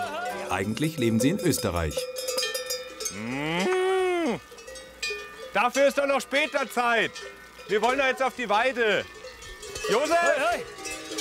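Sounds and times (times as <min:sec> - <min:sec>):
cowbells clanking: 0:00.0 - 0:11.1
speech: 0:00.5 - 0:02.2, 0:03.1 - 0:03.7, 0:05.5 - 0:09.2, 0:09.9 - 0:11.1
cow in a barn mooing: 0:03.0 - 0:04.5.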